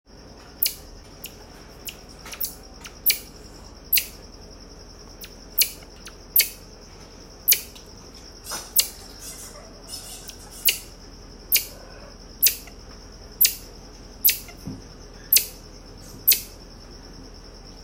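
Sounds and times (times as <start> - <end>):
marmoset monkey: 0.6 - 4.2, 5.1 - 6.7, 7.4 - 7.8, 8.6 - 14.6, 15.2 - 15.6, 16.2 - 16.6.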